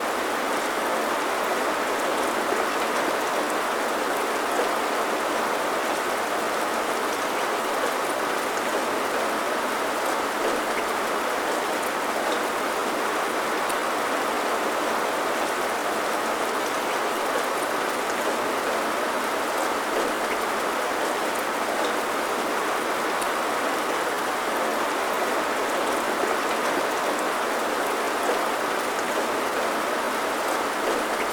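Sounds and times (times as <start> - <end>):
rain: 0.0 - 31.3.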